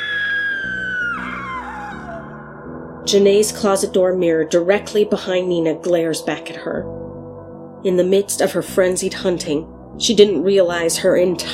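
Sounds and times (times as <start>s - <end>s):
woman's startled high-pitched scream: 0.0s - 2.4s
speech: 3.1s - 7.0s, 7.8s - 11.5s.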